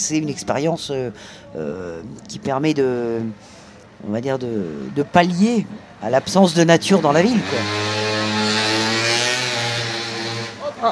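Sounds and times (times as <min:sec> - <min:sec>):
speech: 0:00.0 - 0:08.0
motorcycle engine passing by outdoors: 0:06.2 - 0:10.8.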